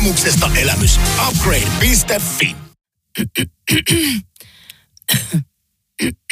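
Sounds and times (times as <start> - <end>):
speech: 0.0 - 4.3, 5.1 - 6.3
harsh rough hacking coughs: 3.2 - 4.3, 5.1 - 6.3
person clearing throat: 3.2 - 4.3, 5.1 - 6.3
raspy wheezing breath: 4.1 - 4.9.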